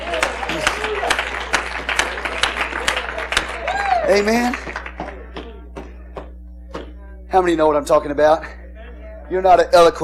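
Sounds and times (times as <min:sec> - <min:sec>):
audience clapping in praise during a sermon: 0:00.0 - 0:06.3
crowd murmur: 0:00.0 - 0:07.3
speech: 0:04.1 - 0:04.8, 0:07.3 - 0:08.6, 0:09.3 - 0:10.0.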